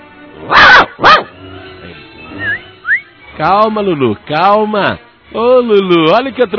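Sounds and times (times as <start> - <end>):
dog barking: 0.5 - 1.4
speech: 3.4 - 6.5.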